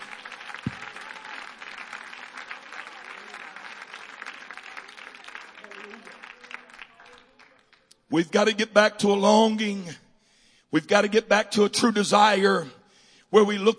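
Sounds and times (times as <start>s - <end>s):
audience clapping hands in dense sustained applause: 0.0s - 7.9s
speech: 8.1s - 10.0s, 10.7s - 13.7s.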